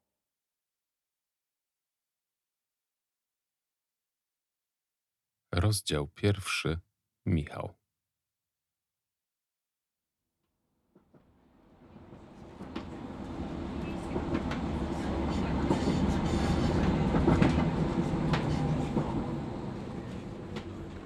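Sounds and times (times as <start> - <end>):
speech: 5.6 - 7.8
tram rolling along its rails: 11.8 - 21.0.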